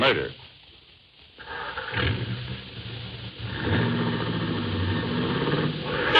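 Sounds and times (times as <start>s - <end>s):
speech: 0.0s - 0.4s, 1.4s - 2.3s
car engine starting and revving: 1.4s - 6.1s.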